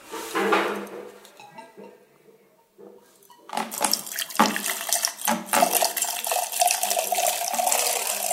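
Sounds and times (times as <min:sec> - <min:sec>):
cider poured badly from a height onto cider: 0:03.5 - 0:08.3.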